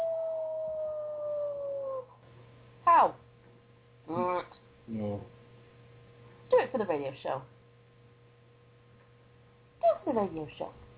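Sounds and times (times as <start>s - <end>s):
person imitating a wolf howling at the moon: 0.0s - 2.2s
speech: 3.0s - 3.2s, 6.8s - 7.6s, 10.2s - 10.8s.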